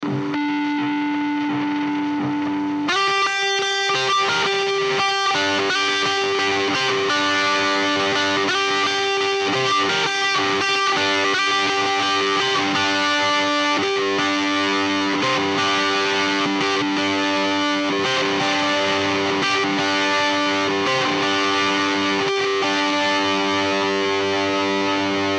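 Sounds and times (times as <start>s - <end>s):
trashy guitar riff in G: 0.0s - 25.3s.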